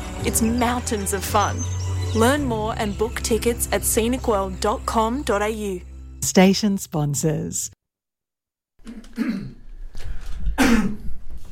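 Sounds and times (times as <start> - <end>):
speech: 0.2 - 7.8, 8.8 - 9.5
rough throat-clearing into a microphone: 8.8 - 9.6, 10.5 - 11.2
person coughing into an unmuted microphone: 8.9 - 9.6, 10.6 - 11.2.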